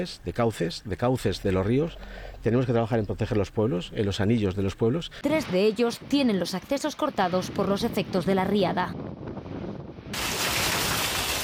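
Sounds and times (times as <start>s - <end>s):
speech: 0.0s - 9.2s
heavy rain falling during a storm: 10.1s - 11.4s.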